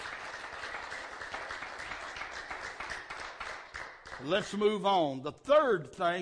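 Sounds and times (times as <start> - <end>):
audience clapping hands in praise: 0.0 - 4.8
speech: 4.2 - 6.2.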